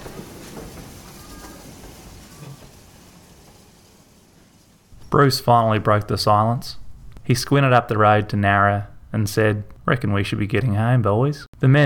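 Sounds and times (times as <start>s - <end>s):
steam train rumbling, clacking, hissing and chuffing: 0.0s - 5.7s
speech: 5.1s - 11.8s.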